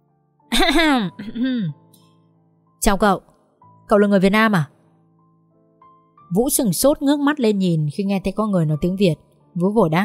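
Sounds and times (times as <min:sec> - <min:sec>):
woman clearing her throat: 0:00.5 - 0:01.8
speech: 0:00.6 - 0:01.8, 0:02.8 - 0:03.3, 0:03.9 - 0:04.7, 0:06.3 - 0:10.0.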